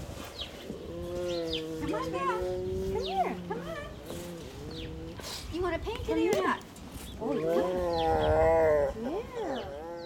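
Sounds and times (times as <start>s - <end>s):
grumpy tiger growling: 0.6s - 5.7s, 7.1s - 10.0s
speech: 2.0s - 3.9s, 5.6s - 9.0s.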